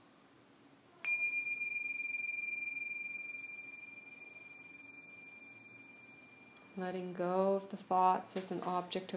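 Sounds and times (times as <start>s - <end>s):
meditation bell struck and ringing: 1.0s - 7.2s
speech: 6.8s - 9.1s.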